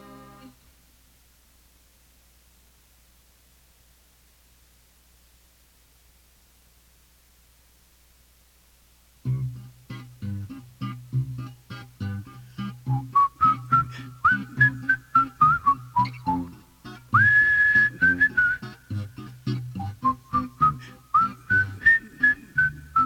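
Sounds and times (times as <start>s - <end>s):
whistled melody: 12.8s - 23.0s.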